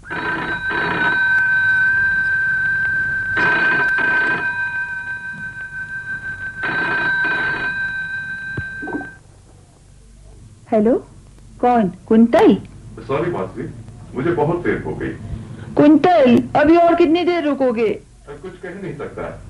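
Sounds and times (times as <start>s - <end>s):
telephone bell ringing: 0.0s - 9.2s
speech: 10.8s - 19.4s.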